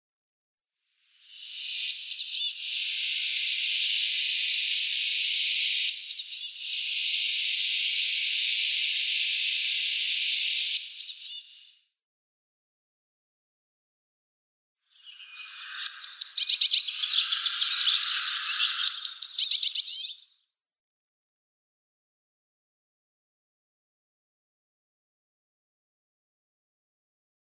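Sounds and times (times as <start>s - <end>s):
azure tit calls: 1.3s - 11.7s, 15.0s - 20.3s.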